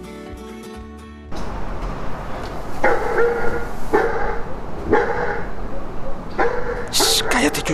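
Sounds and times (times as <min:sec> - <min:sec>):
dog barking inside a house in Guatemala: 0:02.8 - 0:07.7.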